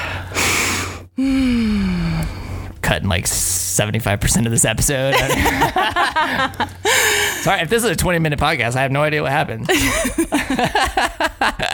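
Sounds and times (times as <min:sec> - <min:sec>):
deep breath drawn in: 0:00.0 - 0:02.8
speech: 0:01.2 - 0:01.4, 0:03.0 - 0:11.7
laughter: 0:05.1 - 0:07.5, 0:09.7 - 0:11.7.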